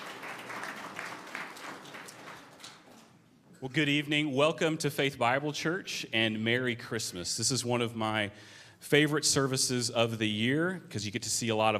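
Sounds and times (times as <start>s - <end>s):
audience clapping and applause: 0.0s - 3.2s
speech: 3.6s - 11.7s.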